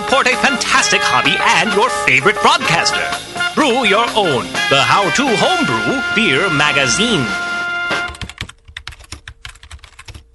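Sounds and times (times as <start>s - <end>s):
speech: 0.2s - 7.4s
typing on a computer keyboard: 8.1s - 10.3s.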